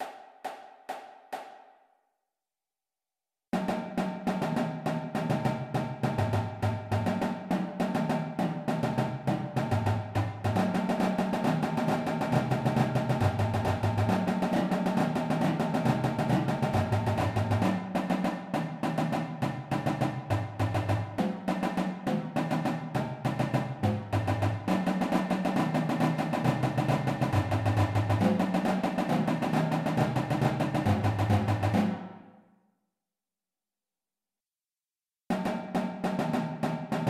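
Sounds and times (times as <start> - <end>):
beginner drumline warmup flams: 3.6 - 32.2, 35.3 - 37.0.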